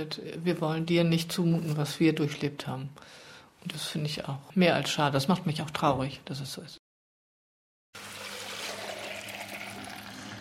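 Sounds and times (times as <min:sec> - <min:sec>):
speech: 0:00.0 - 0:06.8
raw milk pouring from a shiny milk tank into a bottle: 0:08.0 - 0:10.3.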